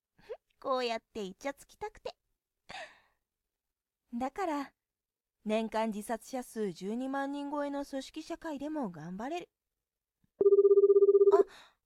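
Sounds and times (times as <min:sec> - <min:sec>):
speech: 0:00.6 - 0:02.9, 0:04.1 - 0:04.8, 0:05.4 - 0:09.6, 0:11.3 - 0:11.7
smartphone ringing in a rapid electronic trill: 0:10.4 - 0:11.5.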